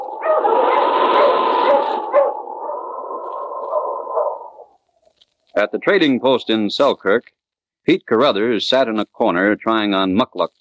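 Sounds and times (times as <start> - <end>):
dog barking and baying loudly: 0.0 - 4.6
speech: 0.3 - 0.8, 5.6 - 10.6.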